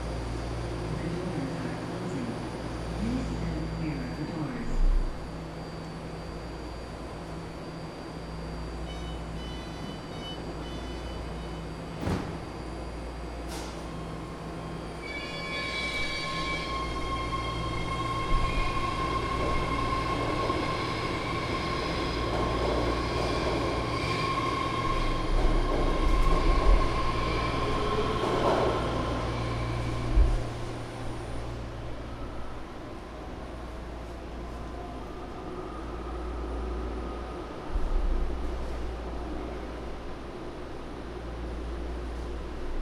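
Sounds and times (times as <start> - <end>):
BART Legacy Fleet train inverter: 0.0 - 42.8
BART Legacy Fleet train door closing: 8.9 - 31.7.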